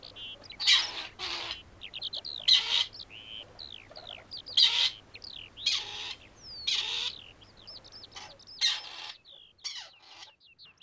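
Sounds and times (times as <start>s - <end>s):
Grey partridge rasping calls: 0.0s - 10.8s.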